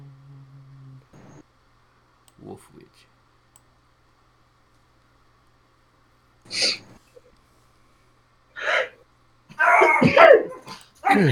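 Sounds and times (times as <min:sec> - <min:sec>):
speech: 0:02.4 - 0:03.2, 0:11.1 - 0:11.3
dog barking: 0:09.6 - 0:11.3.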